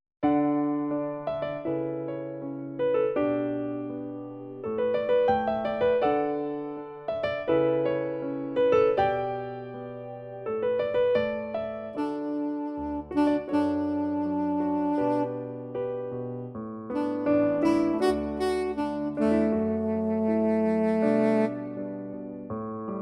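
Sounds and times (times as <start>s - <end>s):
jazz piano: 0.2s - 23.0s
jazz saxophone: 11.4s - 16.1s, 16.9s - 22.3s.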